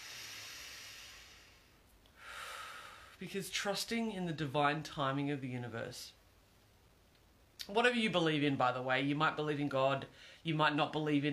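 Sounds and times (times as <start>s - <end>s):
person taking a deep breath during a guided breathing moment: 0.0s - 3.2s, 10.1s - 10.4s
speech: 3.2s - 6.2s, 7.7s - 11.3s.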